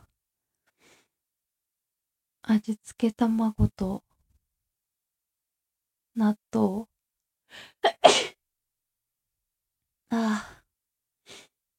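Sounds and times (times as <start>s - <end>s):
speech: 2.5s - 4.1s, 6.2s - 6.9s, 7.5s - 7.8s, 10.1s - 10.6s
person sneezing: 7.8s - 8.4s.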